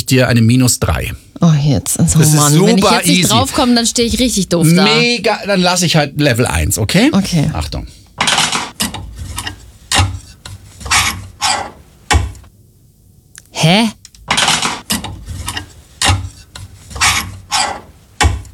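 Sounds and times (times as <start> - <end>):
speech: 0.1 - 8.0, 13.6 - 14.0
clothes hanger scraping along a wardrobe rail: 8.2 - 12.0, 14.2 - 18.5.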